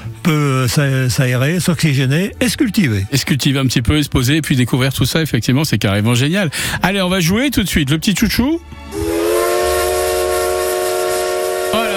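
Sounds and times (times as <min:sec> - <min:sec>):
speech: 0:00.3 - 0:09.1
steam train whistle as the train arrives at a station: 0:08.9 - 0:11.9.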